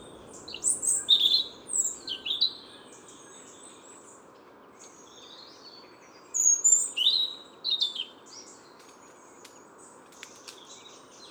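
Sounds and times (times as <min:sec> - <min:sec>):
steady hiss: 0:00.0 - 0:02.5
Eurasian Wren singing in an autumn woodland park: 0:00.0 - 0:02.6.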